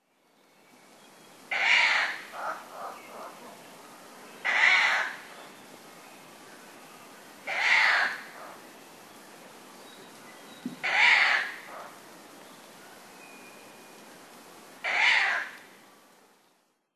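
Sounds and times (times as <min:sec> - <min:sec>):
owl calling in Tanzawa: 0:01.5 - 0:03.6, 0:04.4 - 0:05.4, 0:07.5 - 0:08.6, 0:10.7 - 0:12.0, 0:14.8 - 0:15.7.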